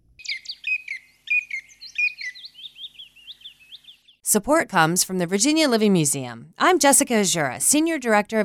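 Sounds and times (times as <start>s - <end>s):
chipping sparrow singing: 0.2s - 4.2s
speech: 4.3s - 8.4s.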